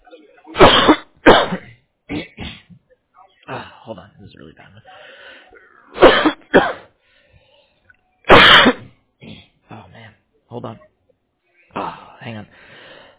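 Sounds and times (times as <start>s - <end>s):
harsh rasping coughing fit: 0.4s - 2.8s, 5.6s - 7.0s, 8.3s - 9.6s
speech: 3.9s - 5.3s, 10.6s - 10.9s, 12.3s - 12.7s.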